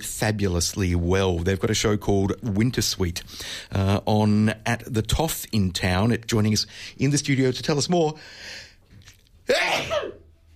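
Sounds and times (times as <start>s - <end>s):
speech: 0.0s - 8.6s, 9.5s - 10.2s
sneeze: 9.5s - 10.3s.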